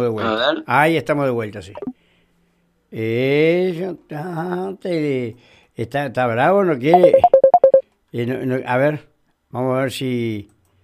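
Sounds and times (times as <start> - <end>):
speech: 0.0 - 1.9, 2.9 - 7.4, 8.1 - 10.5
high telephone keypad tones dialing a call back: 7.0 - 7.8.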